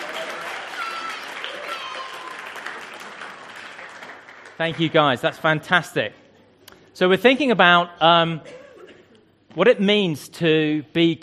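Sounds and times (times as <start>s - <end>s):
faint cheering or voices: 0.0s - 2.8s
crowd applauding: 0.0s - 5.6s
speech: 4.6s - 6.2s, 7.0s - 8.6s, 9.5s - 11.2s.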